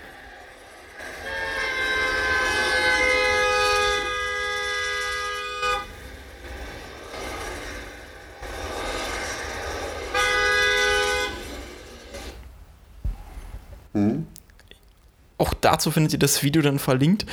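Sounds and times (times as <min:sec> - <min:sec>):
steady road noise: 0:00.0 - 0:16.4
car horn honking at a cyclist on the road: 0:00.9 - 0:06.6, 0:09.2 - 0:11.9
speech: 0:15.6 - 0:17.3.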